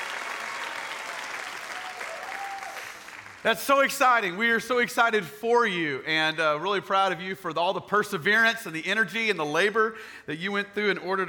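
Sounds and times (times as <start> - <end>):
audience applauding: 0.0 - 3.5
speech: 3.4 - 11.2.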